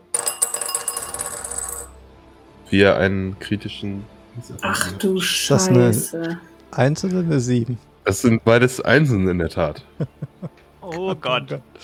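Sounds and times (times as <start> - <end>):
dice rolled across a table for a tabletop role-playing game: 0.1 - 2.0
speech: 2.7 - 11.8
laughter: 9.8 - 11.6.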